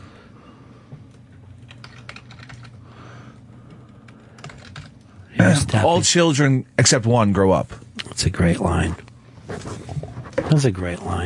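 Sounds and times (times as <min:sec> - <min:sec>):
hum: 0:00.0 - 0:11.2
typing on a computer keyboard: 0:01.6 - 0:02.8, 0:03.8 - 0:05.0
speech: 0:05.4 - 0:09.1, 0:10.5 - 0:11.2.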